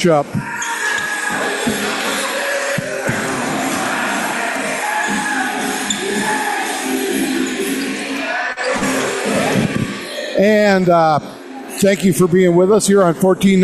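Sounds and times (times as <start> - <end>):
speech: 0.0 - 0.5, 10.4 - 13.6
indoor basketball gym crowd chatter and cheering: 0.0 - 13.6.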